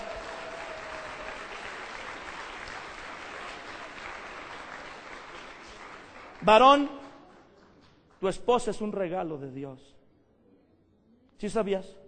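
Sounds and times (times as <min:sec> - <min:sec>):
congregation applause during a sermon: 0:00.0 - 0:07.9
speech: 0:06.4 - 0:07.0, 0:08.2 - 0:10.0, 0:11.4 - 0:12.0.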